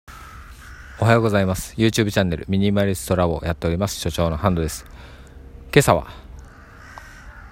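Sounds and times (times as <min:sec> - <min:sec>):
crows cawing in a park mobbing a cat: 0:00.1 - 0:01.7, 0:04.2 - 0:05.4, 0:06.0 - 0:07.5
outdoor hum: 0:00.1 - 0:07.5
speech: 0:01.0 - 0:05.1, 0:05.8 - 0:06.2.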